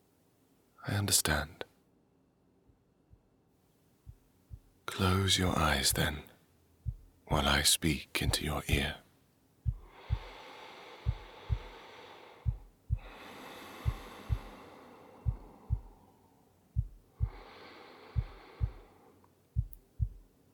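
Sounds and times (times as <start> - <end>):
speech: 0.8 - 1.6, 5.0 - 6.3, 7.3 - 9.0
slow deep heartbeat thumping: 4.1 - 4.8, 5.8 - 6.2, 6.8 - 7.5, 8.2 - 8.9, 9.6 - 14.6, 15.2 - 16.0, 16.8 - 17.5, 18.1 - 18.9, 19.6 - 20.3
soft whooshing breaths: 4.1 - 9.0, 9.6 - 20.3.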